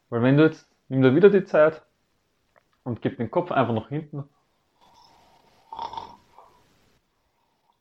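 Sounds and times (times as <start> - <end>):
speech: 0.1 - 1.9, 2.8 - 4.4
person snoring with head tilted back: 4.8 - 6.6.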